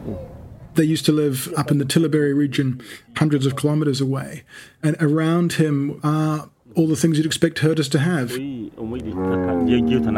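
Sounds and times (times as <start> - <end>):
speech: 0.8 - 10.1
cow mooing at a herders' compound: 9.0 - 10.1.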